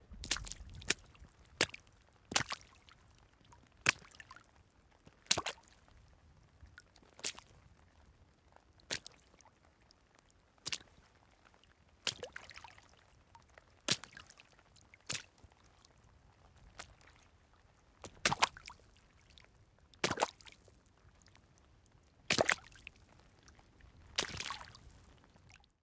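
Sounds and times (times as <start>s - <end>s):
footsteps in water puddle single splashes: 0.2s - 2.8s, 5.3s - 5.6s, 12.0s - 12.8s, 13.9s - 14.4s, 15.1s - 15.4s, 18.0s - 18.8s, 20.0s - 20.6s, 22.3s - 23.0s, 24.1s - 25.0s.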